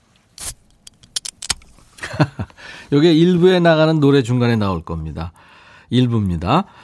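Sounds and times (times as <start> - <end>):
beer can cracked open with a short fizzy hiss: 0.3 - 2.0
sharp metallic clicks and taps: 0.6 - 1.7
laughter: 2.0 - 2.6
speech: 2.2 - 6.8.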